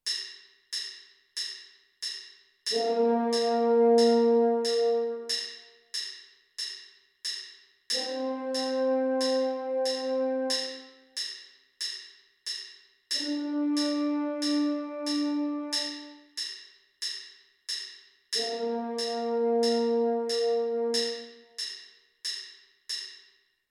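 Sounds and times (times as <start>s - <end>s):
french horn: 2.7s - 5.4s, 8.0s - 11.0s, 13.2s - 16.2s, 18.4s - 21.4s
band on parade: 2.7s - 5.5s, 8.0s - 10.9s, 13.2s - 16.2s, 18.4s - 21.4s.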